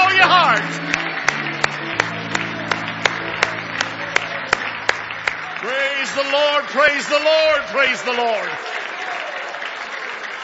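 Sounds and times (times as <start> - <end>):
low sustained organ-like tone: 0.0 - 6.9
audience clapping in praise: 0.0 - 10.4
speech: 6.2 - 8.8.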